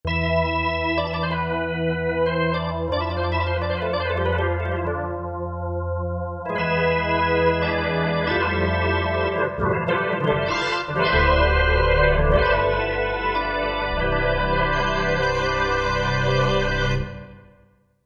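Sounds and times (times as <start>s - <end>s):
ensemble on a Korg MSC-9S organ: 0.0s - 17.5s.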